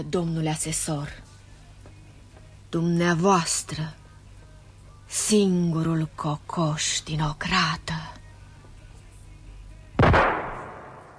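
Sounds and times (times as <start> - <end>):
speech: 0.0 - 1.2, 2.7 - 4.0, 5.1 - 8.2
faint low murmur: 0.0 - 10.0
self-inflicted pistol gunshot in a drama scene: 10.0 - 11.1.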